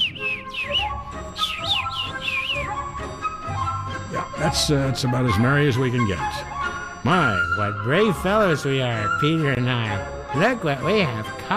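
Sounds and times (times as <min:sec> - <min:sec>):
little bird chirping: 0:00.0 - 0:03.5
soft steady tonal hum: 0:01.1 - 0:10.4
speech: 0:04.4 - 0:11.5.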